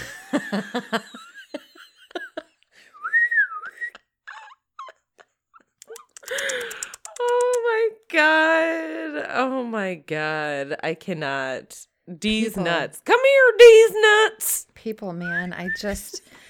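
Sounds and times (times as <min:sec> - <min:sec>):
laughter: 0:00.0 - 0:02.6
speech: 0:00.3 - 0:01.2, 0:09.4 - 0:16.4
man whistling to call a pet squirrel: 0:02.9 - 0:04.0
breathy vocal noises: 0:05.8 - 0:07.6
scattered clicks: 0:05.8 - 0:07.6.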